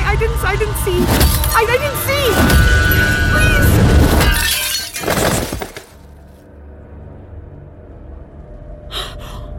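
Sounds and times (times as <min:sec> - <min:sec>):
speech: 0:00.2 - 0:02.6
mirror glass shattering from a head impact: 0:01.0 - 0:01.6, 0:03.9 - 0:06.1
small glass pieces tinkling: 0:04.1 - 0:05.9.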